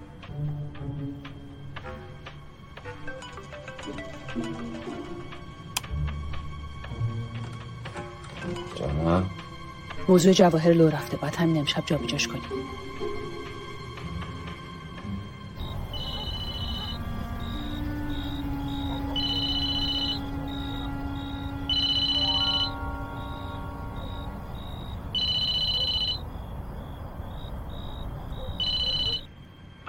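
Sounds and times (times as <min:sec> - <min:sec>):
low steady background: 0:00.0 - 0:29.8
speech: 0:03.9 - 0:04.7, 0:10.1 - 0:13.1
telephone ringing with an electronic trill for a late-night call: 0:15.6 - 0:29.3.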